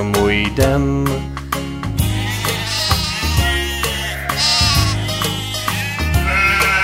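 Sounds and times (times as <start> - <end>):
speech: 0.0 - 1.4
bass-heavy music with a bouncy beat: 0.0 - 6.8
sheep bleating: 2.0 - 6.8.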